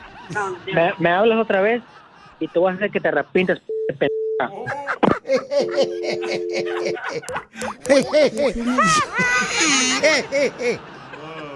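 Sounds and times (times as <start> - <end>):
excited voices: 0.0 - 3.6, 4.4 - 11.5
animated laughter: 0.0 - 11.5
speech: 0.3 - 10.9
electronic telephone busy tone after a call hangs up: 5.6 - 6.9.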